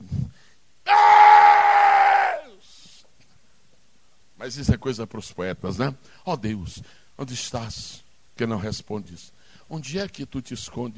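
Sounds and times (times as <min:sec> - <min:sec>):
person giving a loud drawn-out shout: 0:00.9 - 0:02.6
speech: 0:04.5 - 0:10.9.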